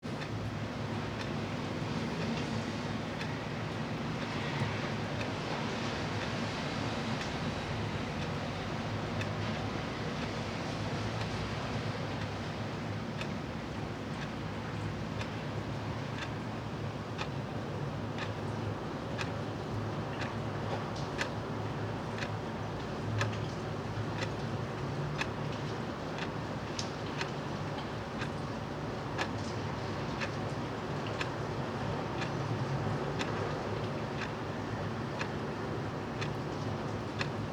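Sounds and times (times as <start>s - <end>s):
rain: 0.0s - 37.5s
clock ticking: 33.0s - 37.5s.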